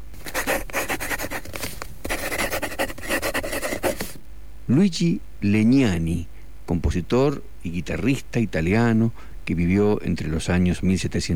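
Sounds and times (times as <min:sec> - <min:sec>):
quill pen dipped in ink scratching across paper: 0:00.1 - 0:04.2
speech: 0:04.7 - 0:11.3.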